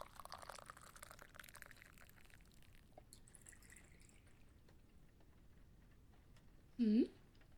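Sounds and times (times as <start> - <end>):
shot of liquor being poured: 0.0 - 4.6.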